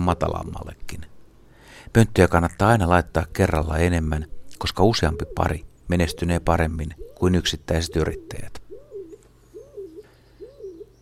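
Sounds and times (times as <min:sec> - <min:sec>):
speech: 0:00.1 - 0:01.1, 0:01.8 - 0:08.6
stock dove cooing: 0:04.2 - 0:10.9.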